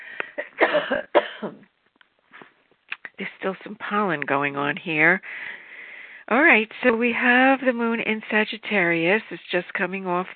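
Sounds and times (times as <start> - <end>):
person coughing: 0.4 - 1.6
speech: 0.8 - 1.6, 3.4 - 5.6, 6.3 - 10.3.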